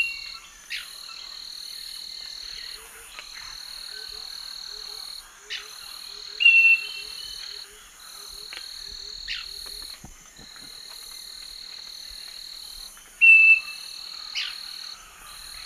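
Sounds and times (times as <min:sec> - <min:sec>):
droning insect bursts: 0:00.0 - 0:15.6
Scaly-breasted Wren singing pure whistled notes: 0:13.2 - 0:13.8.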